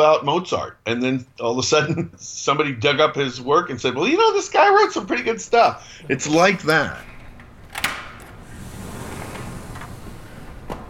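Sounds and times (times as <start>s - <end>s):
speech: 0.0s - 7.1s
sliding glass door of a winery tasting room opening: 6.7s - 10.8s.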